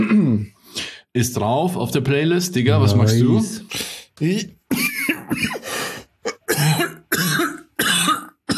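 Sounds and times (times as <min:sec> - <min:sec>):
person coughing harshly: 0:00.0 - 0:00.5, 0:04.7 - 0:08.5
speech: 0:01.2 - 0:04.6, 0:05.3 - 0:05.6.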